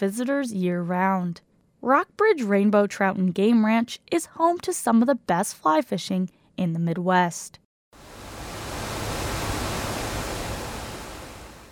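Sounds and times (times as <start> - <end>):
speech: 0.0 - 8.2
waterfall flowing into a creek: 8.0 - 11.7.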